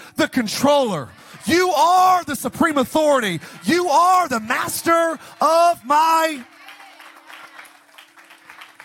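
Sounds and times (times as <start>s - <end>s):
speech: 0.3s - 6.5s
audience clapping half-heartedly: 5.2s - 8.8s.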